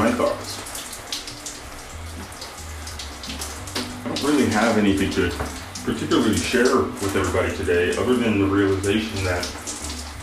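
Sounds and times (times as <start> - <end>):
shower water running: 0.0 - 10.2
speech: 4.6 - 9.7.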